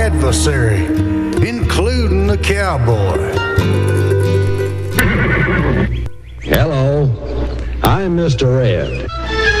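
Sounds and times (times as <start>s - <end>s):
speech: 0.2s - 4.2s, 6.5s - 7.2s, 8.0s - 9.5s
horse neighing with quavering whinny: 5.0s - 6.0s.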